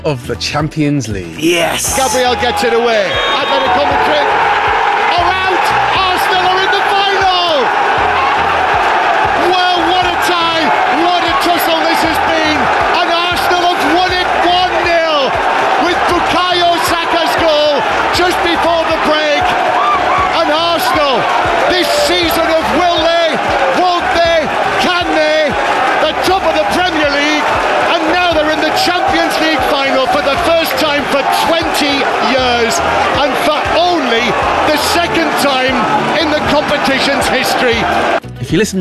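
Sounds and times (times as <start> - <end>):
excited football commentary: 0.0 - 4.4, 9.3 - 19.6, 20.2 - 38.7
speech: 0.0 - 4.5, 32.7 - 38.7
football crowd cheering at the final whistle of a Champions League semi-final in North London: 1.4 - 38.2.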